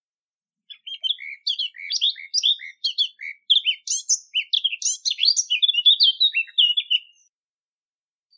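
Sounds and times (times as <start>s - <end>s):
Eurasian blackcap singing: 0.7s - 7.3s.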